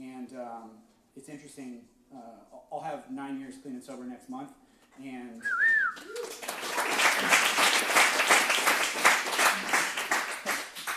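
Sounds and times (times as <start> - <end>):
speech: 0.3 - 7.5
audience applause at a talk on addiction recovery: 6.0 - 10.9.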